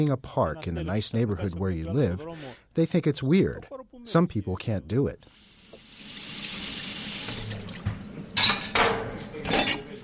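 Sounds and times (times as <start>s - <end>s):
speech: 0.0s - 5.5s
water running into a sink: 5.3s - 8.7s
dishes splashing and clattering as they are rinsed and handled: 7.3s - 10.0s.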